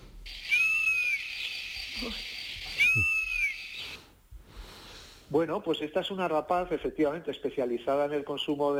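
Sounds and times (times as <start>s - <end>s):
insects humming shrilly: 0.2s - 4.2s
European honey buzzard whistling call: 0.4s - 4.0s
speech: 2.0s - 3.2s, 5.3s - 8.7s.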